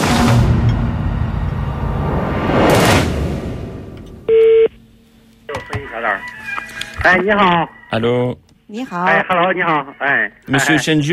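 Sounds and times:
rushing noise: 0:00.0 - 0:04.3
electronic telephone tone of an outgoing call from France: 0:04.3 - 0:04.7
speech: 0:07.1 - 0:11.1.

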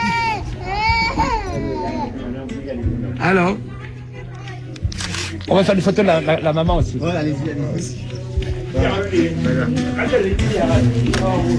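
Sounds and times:
newborn baby crying just after delivery: 0:00.0 - 0:02.2
speech: 0:03.2 - 0:03.7, 0:05.5 - 0:11.5.

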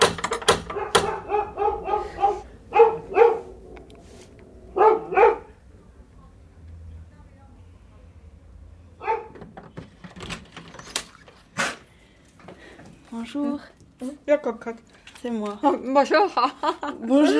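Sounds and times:
female dog barking: 0:00.7 - 0:03.7, 0:04.7 - 0:05.6, 0:09.0 - 0:09.4
speech: 0:13.3 - 0:17.3.

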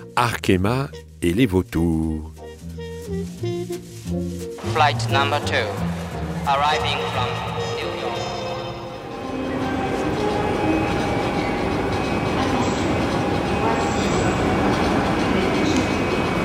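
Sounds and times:
speech: 0:00.2 - 0:02.4, 0:03.1 - 0:07.6
train arriving at a railway station in Paris: 0:04.4 - 0:16.4.

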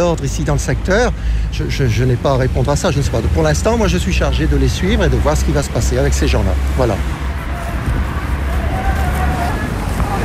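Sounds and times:
speech: 0:00.0 - 0:07.2
wind in Mons-en-Barœul, France, pushing tear gas, rumbling against the microphone: 0:06.6 - 0:10.2.

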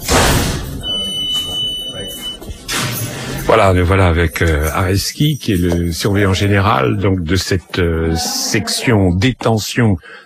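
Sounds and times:
heavy prison door clanking shut in a youth detention section: 0:00.0 - 0:01.0
steady high electronic beep: 0:00.6 - 0:03.3
speech: 0:03.5 - 0:10.2.

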